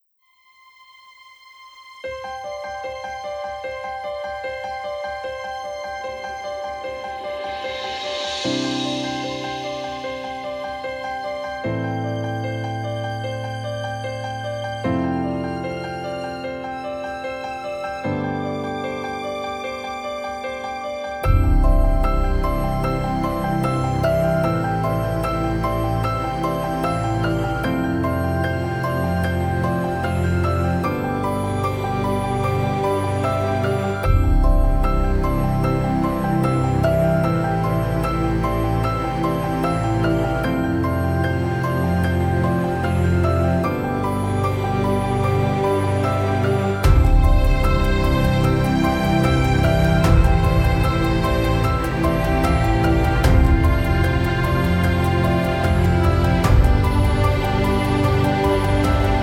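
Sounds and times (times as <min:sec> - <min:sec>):
inspirational piano music: 0:02.0 - 0:59.2.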